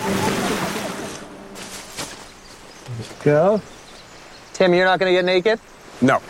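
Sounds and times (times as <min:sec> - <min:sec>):
river water rushing and churning around large rocks: 0:00.0 - 0:02.8
speech: 0:03.2 - 0:03.8, 0:04.6 - 0:06.2.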